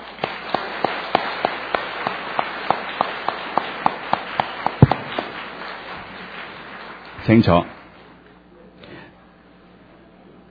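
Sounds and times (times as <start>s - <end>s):
church audience applauding at a Father's Day service: 0.0s - 8.0s
speech: 7.2s - 7.8s.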